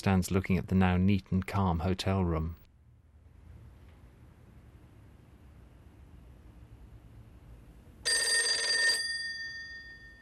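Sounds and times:
speech: 0.0s - 2.6s
electronic telephone ring in a hotel room: 8.0s - 10.2s.

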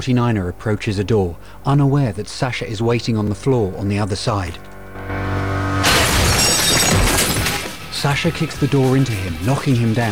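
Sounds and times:
speech: 0.0s - 5.3s, 8.0s - 10.1s
glass panel wall shattering as a body crashes through: 5.7s - 8.3s
glass shards scattering: 5.8s - 7.8s.

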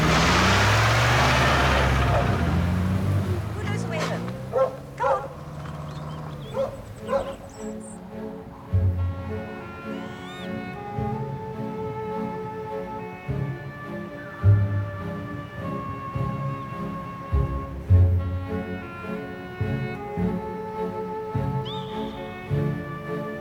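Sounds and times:
car rumble driving off: 0.0s - 23.3s
black Labradors barking: 3.6s - 8.8s
black Labradors whining: 4.0s - 8.3s, 9.8s - 10.6s.

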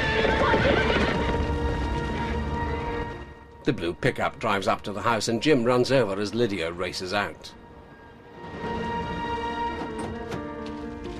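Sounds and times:
horses neighing and whinnying loudly: 0.0s - 1.5s
hooves clip-clopping as horses are released from their stalls: 0.0s - 3.2s, 9.7s - 11.1s
speech: 3.7s - 7.6s.

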